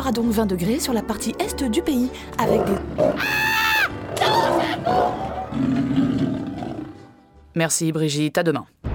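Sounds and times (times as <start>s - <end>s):
speech: 0.0s - 3.6s, 7.6s - 8.8s
Bengal tiger roaring: 2.4s - 7.1s.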